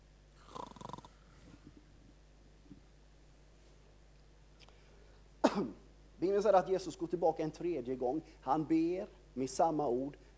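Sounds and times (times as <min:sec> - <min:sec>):
rough rattling snore of a sleeping person: 0:00.4 - 0:01.2
speech: 0:05.6 - 0:10.3.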